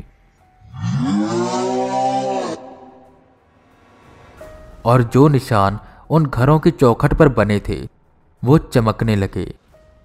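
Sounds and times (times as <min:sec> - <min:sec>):
loud echoing howl: 0:00.7 - 0:03.2
speech: 0:04.8 - 0:09.6.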